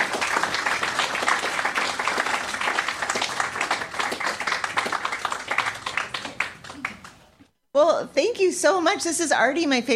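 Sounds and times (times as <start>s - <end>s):
live audience applauding at an author event: 0.0s - 7.3s
speech: 7.8s - 9.9s.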